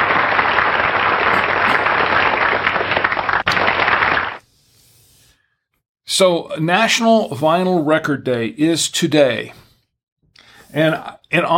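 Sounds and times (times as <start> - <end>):
crowd applause: 0.0 - 4.4
speech: 6.2 - 9.6, 10.7 - 11.5.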